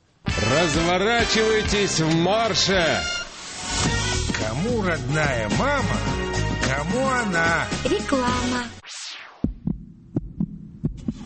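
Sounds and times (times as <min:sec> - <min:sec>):
speech: 0:00.5 - 0:03.2, 0:03.8 - 0:08.8
heartbeat sound effect lub-dub double thumps: 0:09.4 - 0:11.2.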